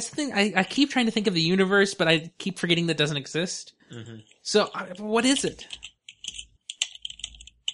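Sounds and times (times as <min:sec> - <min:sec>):
speech: 0:00.0 - 0:05.9
typing on a computer keyboard: 0:05.6 - 0:07.7.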